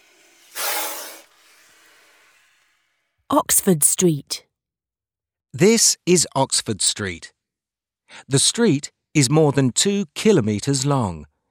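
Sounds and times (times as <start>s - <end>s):
snake hissing: 0.0s - 2.8s
speech: 3.3s - 4.5s, 5.5s - 7.4s, 8.1s - 11.3s.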